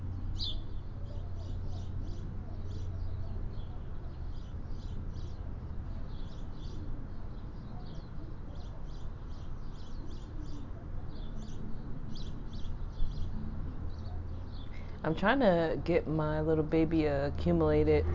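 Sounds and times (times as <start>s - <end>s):
small birds chirping as they fly from tree to tree: 0.0s - 16.4s
speech: 15.1s - 18.1s.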